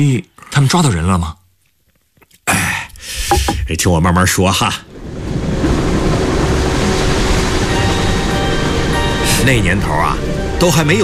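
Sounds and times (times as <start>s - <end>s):
speech: 0.0s - 1.4s, 3.3s - 4.9s, 9.5s - 11.0s
old passenger train rolling along the tracks: 5.5s - 11.0s.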